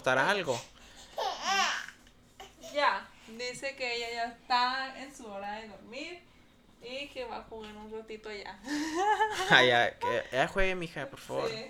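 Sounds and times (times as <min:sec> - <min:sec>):
speech: 0:00.0 - 0:00.8, 0:02.8 - 0:11.6
small child crying and babbling: 0:01.2 - 0:03.0
laughter: 0:08.7 - 0:09.8.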